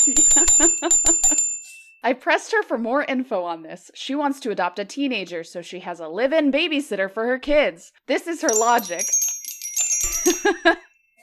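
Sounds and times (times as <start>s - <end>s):
bright bell-like chime sound effect: 0.0s - 2.0s, 8.5s - 11.2s
speech: 2.0s - 9.3s, 10.4s - 10.9s.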